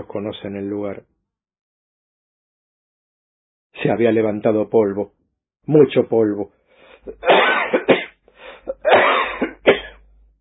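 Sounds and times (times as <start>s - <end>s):
speech: 0.0s - 1.1s, 3.8s - 7.8s
person coughing harshly from dust: 7.0s - 10.0s.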